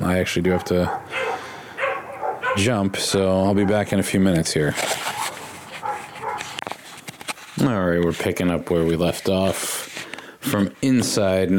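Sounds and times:
speech: 0.1s - 1.4s, 2.6s - 5.1s, 7.6s - 9.8s, 10.5s - 11.5s
several dogs barking and yipping excitedly: 0.4s - 4.2s, 5.0s - 6.6s.

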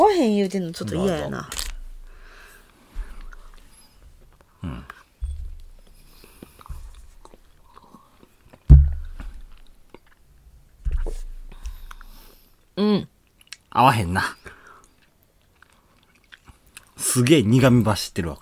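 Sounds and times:
speech: 0.2s - 1.6s, 12.8s - 13.1s, 13.8s - 14.4s, 17.2s - 18.4s
chewing strawberry-flavoured chocolate candy: 1.4s - 8.7s, 9.6s - 10.3s, 11.5s - 13.8s, 14.4s - 17.5s.

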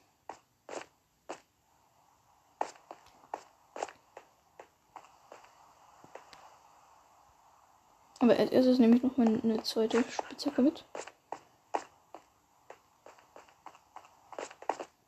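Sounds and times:
crunchy running footsteps in a video game: 0.0s - 1.5s, 2.6s - 6.3s, 8.9s - 15.0s
speech: 8.2s - 11.1s.

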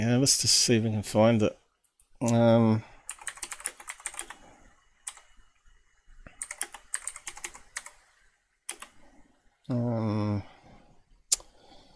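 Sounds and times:
speech: 0.0s - 1.6s, 2.2s - 2.9s, 9.7s - 10.5s
rapid typing on a computer keyboard: 3.1s - 4.4s, 5.1s - 5.3s, 6.3s - 8.0s, 8.7s - 9.0s.

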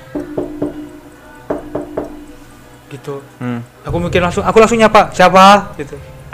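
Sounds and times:
sharp knocks on window glass: 0.2s - 0.9s, 1.5s - 2.3s
speech: 3.0s - 6.1s.

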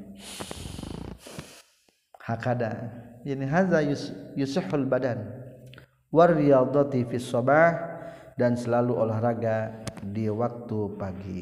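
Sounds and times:
long deep breath drawn in sharply through the nose: 0.1s - 1.8s, 8.0s - 8.4s
speech: 2.3s - 5.4s, 6.1s - 11.4s.

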